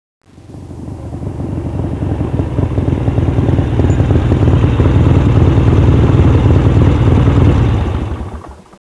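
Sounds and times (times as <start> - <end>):
Harley motorcycle engine: 0.3 - 8.8.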